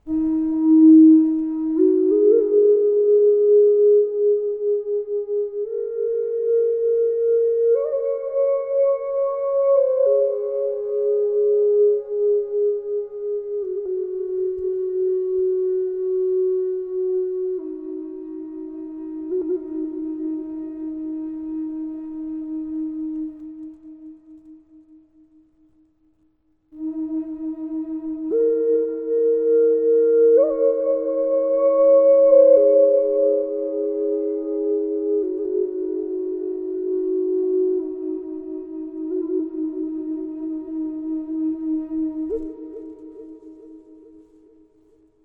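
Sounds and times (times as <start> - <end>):
maple double flute drone on E tuned to 432 with reverb: 0.0 - 25.8, 26.8 - 45.0.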